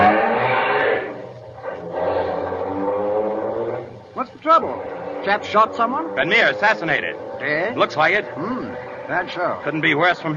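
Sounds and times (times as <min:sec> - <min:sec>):
Bentley car engine roaring as the car sets off: 0:00.0 - 0:10.3
speech: 0:04.5 - 0:10.3.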